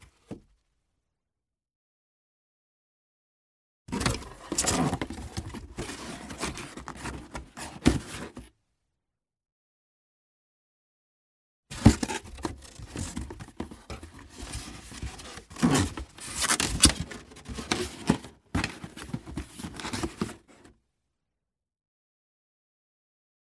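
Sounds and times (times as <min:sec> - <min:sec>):
cardboard box being closed: 0:03.9 - 0:08.5, 0:11.8 - 0:20.7.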